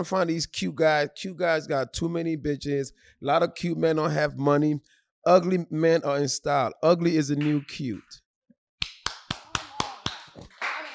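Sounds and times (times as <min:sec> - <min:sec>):
speech: 0:00.0 - 0:08.2
sharp hand claps: 0:07.4 - 0:07.7, 0:08.8 - 0:10.9.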